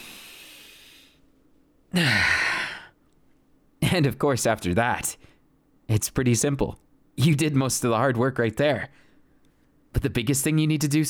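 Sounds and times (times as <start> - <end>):
deep breath: 0.0 - 1.2, 1.9 - 3.0, 8.9 - 9.4
speech: 3.9 - 5.3, 5.9 - 9.0, 10.0 - 11.0.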